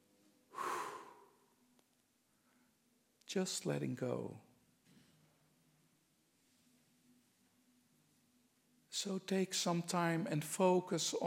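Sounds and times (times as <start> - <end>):
breath in through nose, out through mouth: 0.5 - 1.5
speech: 3.3 - 4.5, 9.0 - 11.2.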